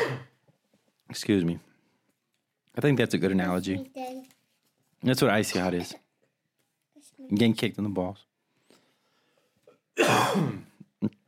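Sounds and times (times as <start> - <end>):
throat clearing from a dry throat: 0.0 - 0.4, 10.0 - 11.0
speech: 1.1 - 1.7, 2.8 - 4.4, 5.0 - 6.0, 7.2 - 8.3, 10.0 - 11.2.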